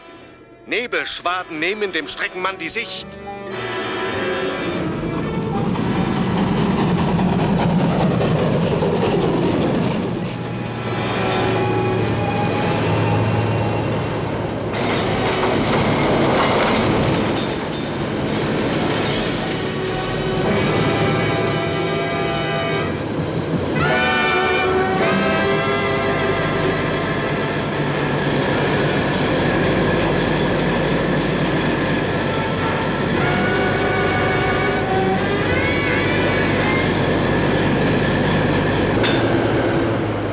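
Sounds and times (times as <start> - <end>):
speech: 0.7 - 3.3
train starting off and running on rails behind a tunnel in fog: 3.6 - 40.3
train wheels clickety-clack on rails: 5.0 - 11.6, 14.2 - 21.2, 26.9 - 40.3.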